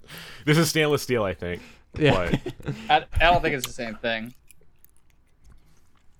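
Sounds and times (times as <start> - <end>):
speech: 0.4 - 4.4
chewing on a metal can tab: 3.4 - 6.1.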